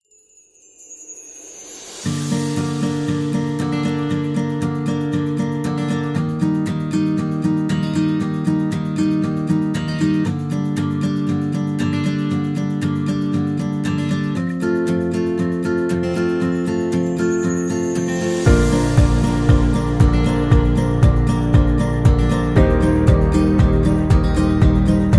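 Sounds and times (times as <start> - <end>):
piano: 0.8 - 8.6, 16.0 - 25.1
acoustic guitar: 1.6 - 25.1.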